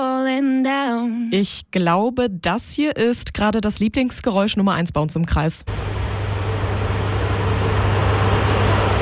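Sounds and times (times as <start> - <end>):
speech: 0.6 - 6.1
electric fan running: 5.7 - 9.0.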